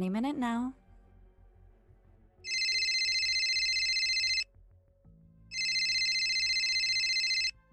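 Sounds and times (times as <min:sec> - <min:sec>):
speech: 0:00.0 - 0:00.8
cell phone ringtone on a coffee table in an apartment living room: 0:02.5 - 0:04.4, 0:05.5 - 0:07.6.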